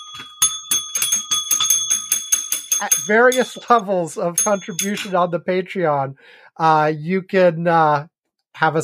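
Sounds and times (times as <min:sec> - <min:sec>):
bells being rung: 0:00.0 - 0:05.4
speech: 0:02.8 - 0:08.8.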